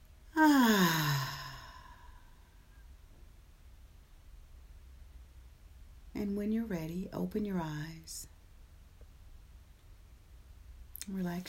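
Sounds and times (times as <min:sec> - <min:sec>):
deep breath out during a guided relaxation exercise: 0:00.4 - 0:02.6
speech: 0:06.2 - 0:08.3, 0:11.1 - 0:11.4.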